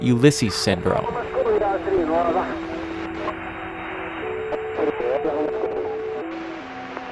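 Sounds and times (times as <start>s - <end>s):
speech: 0.0s - 2.6s
maritime radio transmission voice picked up by scanners on a boat: 0.0s - 3.3s, 4.5s - 6.2s
steady electronic hum: 0.0s - 7.1s
radio hiss: 0.5s - 7.1s.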